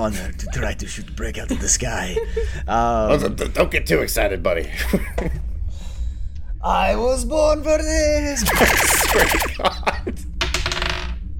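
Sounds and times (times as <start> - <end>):
speech: 0.0 - 5.5, 6.6 - 10.3
dice clattering across a hard table: 10.4 - 11.2.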